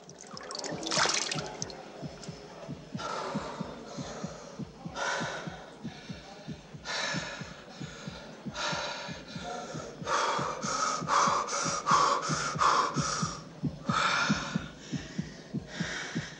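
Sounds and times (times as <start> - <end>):
water splashing in bursts: 0.0 - 2.3
steady fast thudding heartbeat: 0.0 - 16.3.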